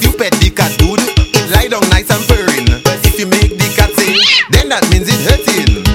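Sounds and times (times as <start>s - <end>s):
thumping rhythmic beat: 0.0s - 5.9s
cat meowing: 4.0s - 4.6s.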